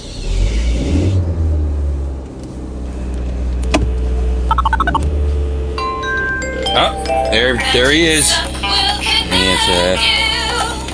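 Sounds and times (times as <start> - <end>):
steady low rumble of a car engine: 0.0 - 10.9
phone electronic ringtone trilling for an incoming call inside a car: 4.5 - 5.0
speech: 7.3 - 8.8, 9.6 - 10.2.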